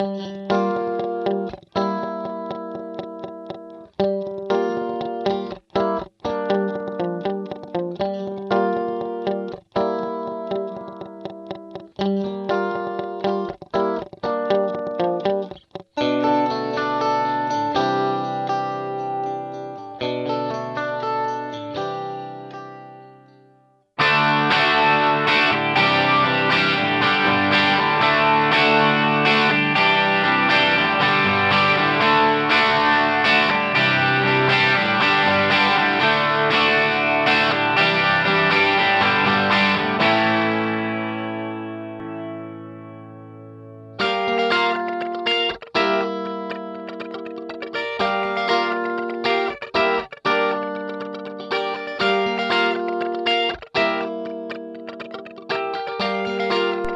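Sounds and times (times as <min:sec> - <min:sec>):
guitar with vintage digital chorus effect: 0:00.0 - 0:56.9.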